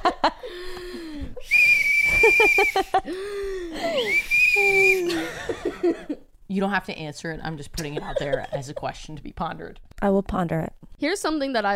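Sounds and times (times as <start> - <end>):
breathy whistle tones from someone blowing through a whistle: 1.4 - 5.3
speech: 2.4 - 11.7.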